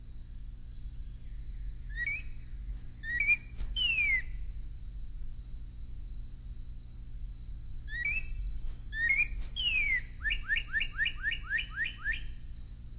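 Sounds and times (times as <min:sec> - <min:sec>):
steady high hum: 0:00.0 - 0:12.9
Northern Cardinal song: 0:01.1 - 0:04.4, 0:07.9 - 0:12.4.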